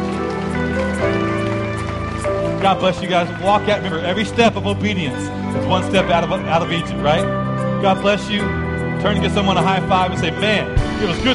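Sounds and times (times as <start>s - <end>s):
church congregation clapping after a sermon: 0.0s - 6.3s
speech: 2.6s - 11.3s.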